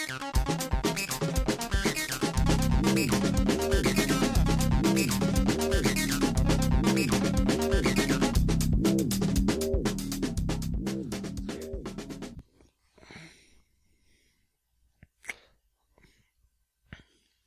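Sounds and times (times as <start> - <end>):
music: 0.0 - 12.4
breathy exhales and puffs into a microphone: 12.8 - 14.6, 15.3 - 17.4.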